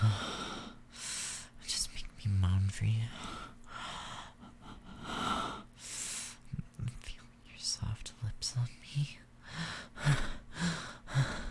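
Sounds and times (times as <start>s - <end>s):
heavy quickening breathing with slight gasps: 0.0s - 1.5s, 3.2s - 6.4s, 9.4s - 11.4s
speech: 2.5s - 3.3s.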